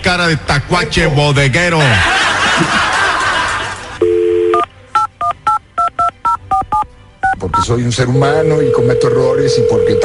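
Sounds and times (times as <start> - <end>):
speech: 0.0 - 2.8, 7.6 - 10.0
laughter: 1.8 - 4.0
telephone dial tone: 4.0 - 5.1, 8.5 - 10.0
telephone dialing beeps of varying pitch: 4.0 - 7.7, 8.4 - 10.0.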